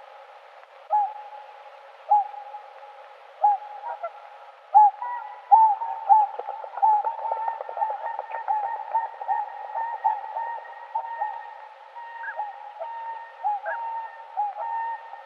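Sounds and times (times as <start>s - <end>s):
Cygnus cygnus whooper swans hooting calls in Uzbekistan: 3.4s - 15.2s.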